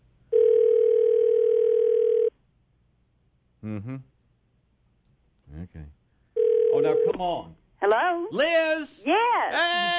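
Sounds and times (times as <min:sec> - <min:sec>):
steady electronic phone ringing tone: 0:00.3 - 0:02.3, 0:06.4 - 0:07.2
speech: 0:03.7 - 0:04.1, 0:06.8 - 0:09.9.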